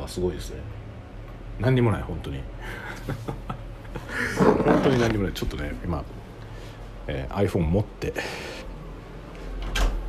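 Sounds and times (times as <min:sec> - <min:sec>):
bathroom ventilation fan whirring: 0:00.0 - 0:10.0
speech: 0:00.1 - 0:00.8, 0:01.6 - 0:03.6, 0:04.2 - 0:06.2, 0:07.1 - 0:08.5
laughter: 0:02.6 - 0:04.8
bathroom door pushed shut with a soft thud and scrape: 0:09.6 - 0:10.0.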